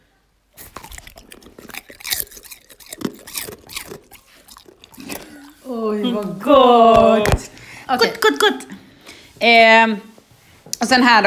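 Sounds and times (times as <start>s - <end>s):
crunchy chewing of potato chips: 0.6s - 7.7s
speech: 5.8s - 8.8s, 9.4s - 10.1s, 10.8s - 11.2s.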